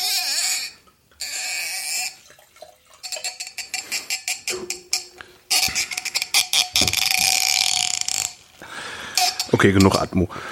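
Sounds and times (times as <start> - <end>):
cork being pulled from a bottle: 0.0 - 2.3, 2.9 - 8.5, 9.2 - 10.1
speech: 9.6 - 10.5.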